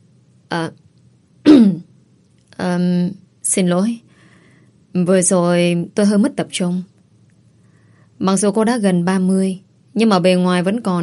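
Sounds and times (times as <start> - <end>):
faint low hum: 0.0 - 11.0
speech: 0.5 - 0.8, 2.6 - 4.0, 5.0 - 6.9, 8.2 - 11.0
woman clearing her throat: 1.5 - 1.9.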